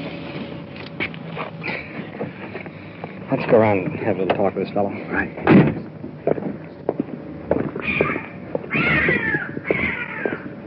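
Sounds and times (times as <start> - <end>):
scuffing noises: 0.0 - 4.6, 5.3 - 10.6
shuffling footsteps: 0.0 - 10.6
speech: 3.3 - 5.7
cat meowing: 7.8 - 10.5.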